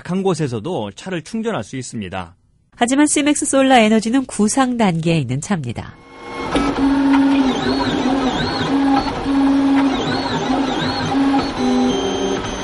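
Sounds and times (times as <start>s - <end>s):
speech: 0.0s - 7.0s
3D printer stepper motors whining in rising and falling tones: 6.0s - 12.6s
steady mechanical hum of a 3D printer: 6.0s - 12.6s.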